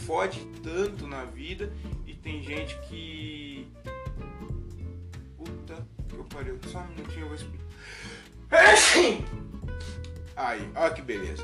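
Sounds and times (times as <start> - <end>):
speech: 0.1 - 4.0, 5.4 - 11.4
person sneezing: 8.5 - 9.2.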